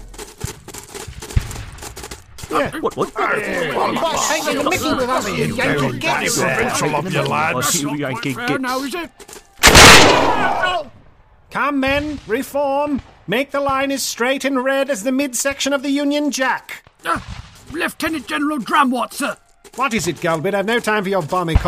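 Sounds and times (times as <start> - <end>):
voices chattering and chuckling: 2.4 - 9.1
speech: 2.5 - 9.3, 11.6 - 21.6
gunshot fired at soldiers in bright red jackets from behind: 9.6 - 10.8.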